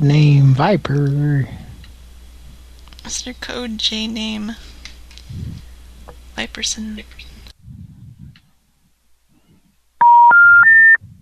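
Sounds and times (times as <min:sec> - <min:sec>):
speech: 0:00.0 - 0:01.6, 0:03.0 - 0:04.7, 0:05.3 - 0:05.7, 0:06.4 - 0:07.3
faint low murmurs: 0:00.0 - 0:09.9, 0:11.0 - 0:11.2
telephone number dialed with touch-tone beeps: 0:10.0 - 0:11.0.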